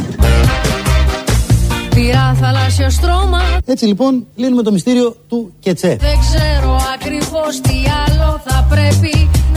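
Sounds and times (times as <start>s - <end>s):
motorbike engines revving at full throttle: 0.1s - 3.6s
speech: 2.4s - 9.5s.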